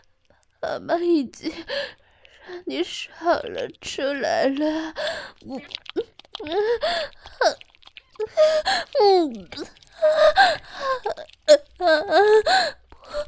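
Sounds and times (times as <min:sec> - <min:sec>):
speech: 0:00.6 - 0:13.2
child crying with sobbing wails and gasping breaths: 0:08.2 - 0:13.2.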